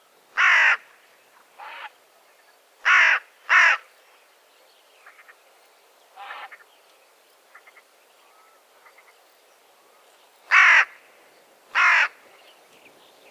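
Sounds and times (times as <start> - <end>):
carrion crow Corvus corone cawing: 0.4 - 0.8, 2.8 - 3.8, 10.5 - 11.0, 11.7 - 12.2.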